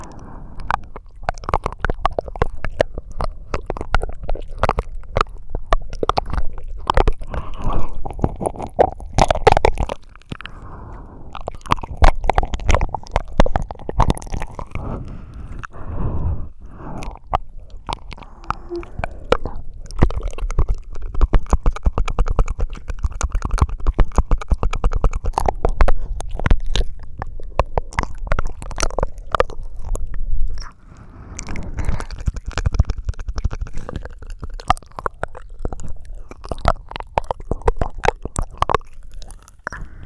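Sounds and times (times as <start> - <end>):
wet licking and smacking mouth sounds of someone licking inside an ear: 0.0 - 40.0.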